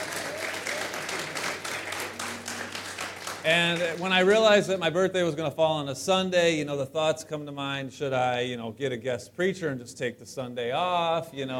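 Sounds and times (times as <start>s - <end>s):
large crowd applauding during a Sunday sermon: 0.0s - 4.8s
speech: 3.4s - 11.5s.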